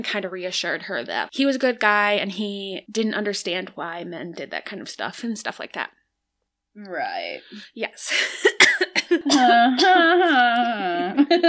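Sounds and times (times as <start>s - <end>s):
speech: 0.0s - 6.0s, 6.8s - 11.4s
person clearing throat: 8.4s - 10.1s.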